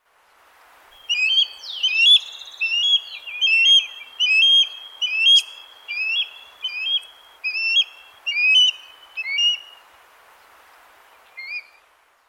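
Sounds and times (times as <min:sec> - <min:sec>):
osprey calling: 0:01.0 - 0:09.8, 0:11.4 - 0:11.8.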